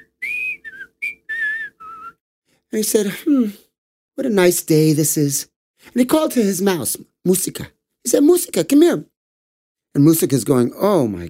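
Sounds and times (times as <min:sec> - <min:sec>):
person whistling a short lilting tune: 0:00.0 - 0:02.2
speech: 0:02.7 - 0:09.1, 0:09.9 - 0:11.2.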